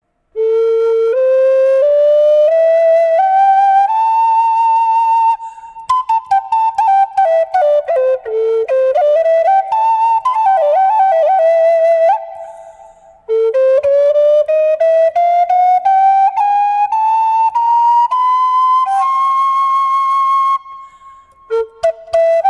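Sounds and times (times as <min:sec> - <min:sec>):
western red cedar flute in A minor: 0:00.3 - 0:22.4.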